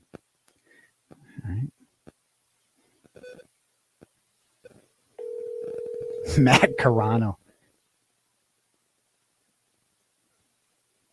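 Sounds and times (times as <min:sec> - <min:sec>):
short sharp telephone keypad tones dialing a phone number: 0:05.2 - 0:06.9
steady electronic phone tone: 0:05.2 - 0:07.1
speech: 0:06.4 - 0:07.4.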